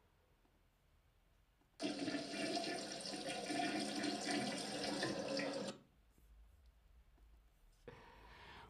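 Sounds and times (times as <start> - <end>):
toilet flushing: 1.8 - 5.8
toilet tank gurgling as it refills: 1.8 - 5.8.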